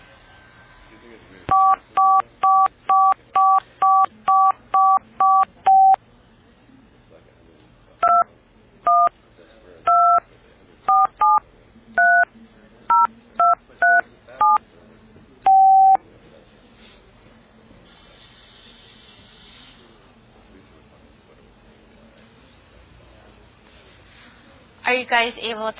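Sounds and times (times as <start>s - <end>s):
speech: 1.0s - 2.8s, 25.1s - 25.7s
touch-tone telephone dialing beeps: 1.5s - 6.0s, 8.0s - 8.3s, 8.9s - 9.1s, 10.9s - 11.4s, 12.0s - 12.3s, 12.9s - 14.6s, 15.5s - 16.0s.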